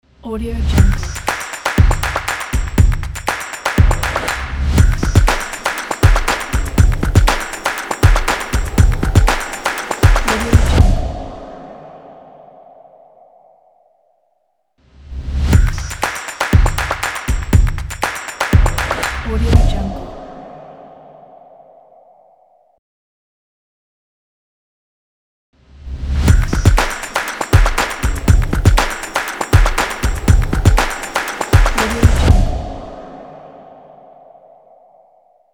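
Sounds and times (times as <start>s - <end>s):
percussion logo: 0.8s - 11.6s, 15.2s - 20.4s, 26.0s - 33.7s.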